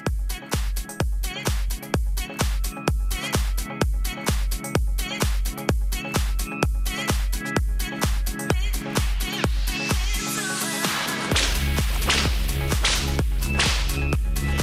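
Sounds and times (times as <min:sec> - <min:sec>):
driving musical backing: 0:00.0 - 0:14.6
whip cracks: 0:11.0 - 0:14.2.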